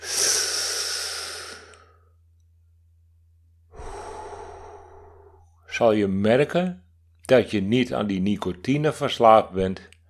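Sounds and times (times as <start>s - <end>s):
slow deep breathing: 0.0s - 2.3s, 3.7s - 5.7s
speech: 5.8s - 9.9s.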